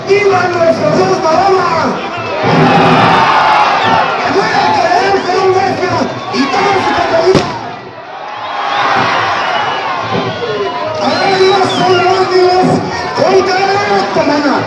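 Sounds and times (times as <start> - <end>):
speech: 0.1 - 2.8, 13.2 - 14.6
large crowd shouting at a Morisma mock-battle festival in Vetagrande: 0.8 - 14.6
sharp crack: 7.3 - 7.7.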